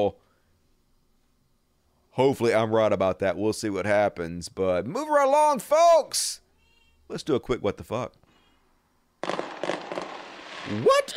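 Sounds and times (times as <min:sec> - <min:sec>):
speech: 0:00.0 - 0:00.2, 0:02.2 - 0:06.4, 0:07.1 - 0:08.2, 0:10.6 - 0:11.1
fireworks bangs and crackling: 0:09.2 - 0:11.1.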